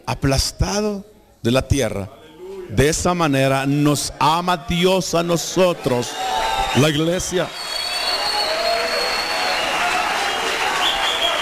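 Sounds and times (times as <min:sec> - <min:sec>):
speech: 0:00.1 - 0:07.6
audience applauding: 0:05.9 - 0:11.4.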